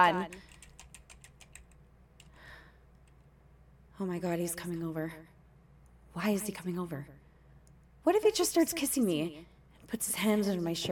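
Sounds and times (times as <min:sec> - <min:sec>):
speech: 0:00.0 - 0:00.5, 0:04.0 - 0:05.4, 0:06.2 - 0:07.2, 0:08.0 - 0:10.9
fingers typing on a computer keyboard: 0:00.3 - 0:01.8.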